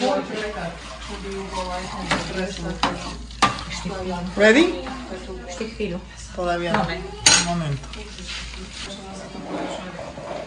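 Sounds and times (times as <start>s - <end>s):
butter sizzling and boiling: 0.0s - 5.4s, 6.4s - 9.3s
bread with poppy seed and milk stirred and scraped in a bowl: 0.0s - 10.4s
speech: 0.2s - 10.4s.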